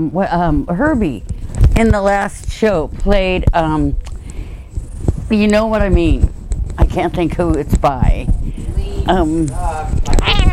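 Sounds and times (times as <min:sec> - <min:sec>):
speech: 0:00.0 - 0:04.1, 0:05.3 - 0:08.4, 0:09.0 - 0:10.0
cat meowing after getting caught on a microphone cord: 0:10.1 - 0:10.5.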